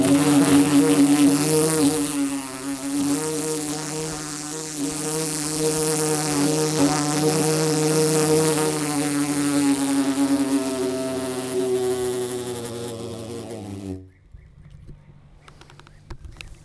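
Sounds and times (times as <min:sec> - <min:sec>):
bumblebee buzzing trapped inside a metal pole: 0:00.0 - 0:14.4
faint clicks: 0:14.6 - 0:16.6.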